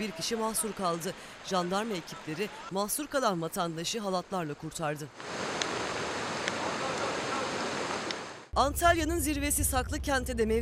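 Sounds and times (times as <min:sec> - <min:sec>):
creek swollen by heavy rain rushing in Serik district: 0:00.0 - 0:02.8, 0:03.7 - 0:08.5
speech: 0:00.0 - 0:05.5, 0:08.6 - 0:10.5.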